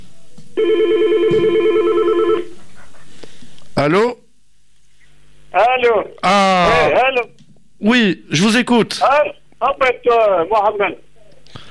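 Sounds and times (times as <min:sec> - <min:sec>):
quiet hum: 0:00.0 - 0:11.7
telephone ringing with warbling electronic tone: 0:00.6 - 0:02.6
speech: 0:03.8 - 0:04.2, 0:05.6 - 0:11.0.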